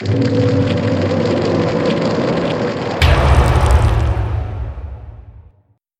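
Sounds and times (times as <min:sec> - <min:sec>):
swelling sound: 0:00.0 - 0:04.6.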